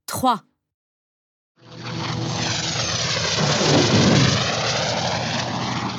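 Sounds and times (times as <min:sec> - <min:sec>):
speech: 0:00.2 - 0:00.5
airplane engine drone as plane passes: 0:01.7 - 0:05.9.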